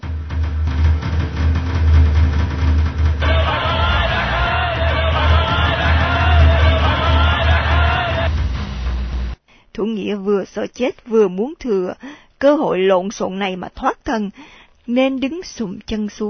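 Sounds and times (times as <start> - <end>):
drums: 0.0 - 9.4
crowd shouting outside: 3.2 - 8.4
speech: 10.5 - 16.2.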